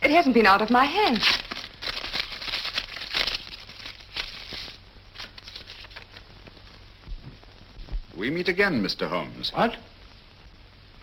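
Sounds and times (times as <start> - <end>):
speech: 0.1 - 1.4, 8.2 - 9.9
sheet of paper being unfolded: 0.6 - 6.6
envelope being torn open: 0.9 - 6.3.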